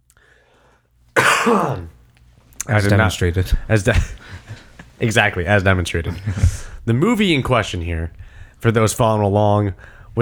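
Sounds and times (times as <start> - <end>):
loud rough throat clearing: 1.2 - 2.0
speech: 1.4 - 2.0, 2.6 - 4.4, 5.0 - 10.2.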